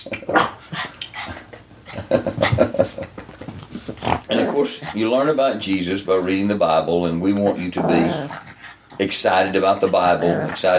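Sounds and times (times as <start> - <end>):
speech: 0.0 - 0.4, 2.1 - 3.0, 4.6 - 8.4, 9.0 - 10.7
dog panting quickly: 0.6 - 6.5, 7.9 - 10.7
agitated dog whimpering and whining: 7.6 - 8.5.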